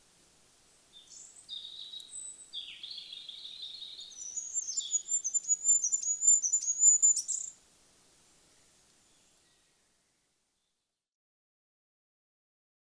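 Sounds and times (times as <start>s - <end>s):
goldcrest singing: 0.7s - 7.6s.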